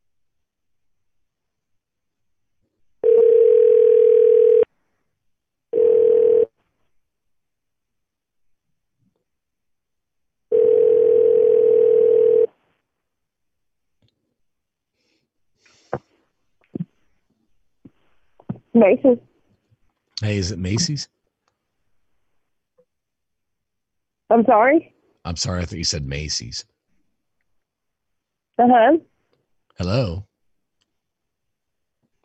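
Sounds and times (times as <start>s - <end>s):
telephone dial tone while dialing a number: 3.0s - 4.7s, 5.8s - 6.5s, 10.5s - 12.5s
speech: 18.8s - 19.3s, 20.2s - 21.2s, 24.3s - 26.7s, 28.6s - 29.1s, 29.8s - 30.3s.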